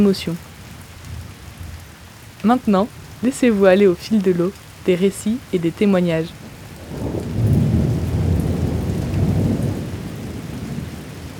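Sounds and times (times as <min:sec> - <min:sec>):
speech: 0:00.0 - 0:00.5, 0:02.4 - 0:07.2
steady rain: 0:00.0 - 0:11.3
deep rolling thunder: 0:06.4 - 0:11.3.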